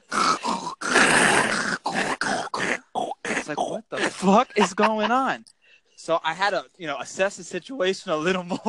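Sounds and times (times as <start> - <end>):
person vocally imitating two people snoring: 0.0 - 4.2
speech: 3.5 - 8.6
laughter: 4.0 - 5.4.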